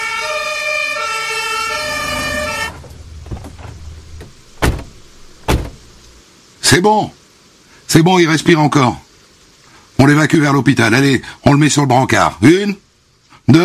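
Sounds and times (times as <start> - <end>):
fire engine siren blaring: 0.0 - 4.2
clunks: 2.4 - 6.2
sharp vehicle door slams: 2.5 - 6.1
speech: 6.8 - 7.2, 7.9 - 9.0, 10.0 - 12.8, 13.5 - 13.6.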